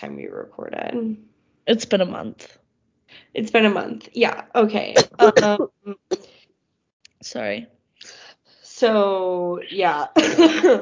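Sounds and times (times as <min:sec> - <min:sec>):
speech: 0:00.0 - 0:06.3, 0:07.2 - 0:08.2, 0:08.8 - 0:10.8
throat clearing: 0:05.0 - 0:06.3
person coughing: 0:05.0 - 0:06.4.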